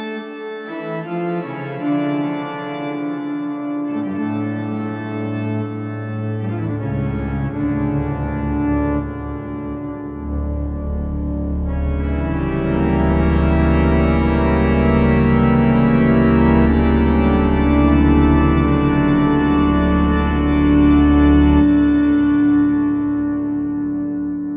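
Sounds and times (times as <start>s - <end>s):
organ through a reverb processor: 0.7s - 24.4s.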